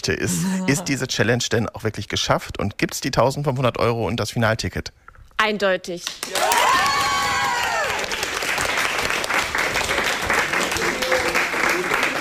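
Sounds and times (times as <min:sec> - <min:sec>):
speech: 0:00.0 - 0:06.6
secondary school class clapping: 0:06.1 - 0:12.1
excited shouts of a school class: 0:06.3 - 0:08.0
secondary school class cheering in Werne, Germany: 0:06.3 - 0:08.2.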